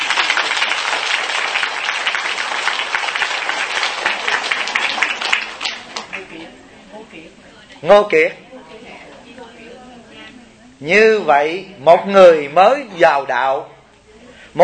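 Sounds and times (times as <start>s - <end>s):
audience applause: 0.0s - 6.4s
speech: 7.8s - 8.4s, 10.8s - 13.7s.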